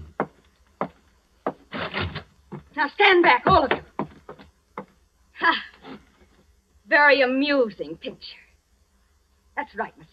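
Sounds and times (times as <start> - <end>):
speech: 2.8 - 3.9, 5.4 - 5.7, 6.9 - 8.4, 9.6 - 10.1
door thud: 3.5 - 4.1.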